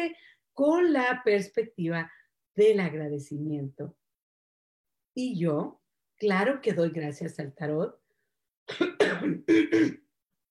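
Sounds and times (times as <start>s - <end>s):
speech: 0.0s - 4.0s, 5.2s - 8.0s, 8.7s - 10.0s
person clearing throat: 8.7s - 10.1s.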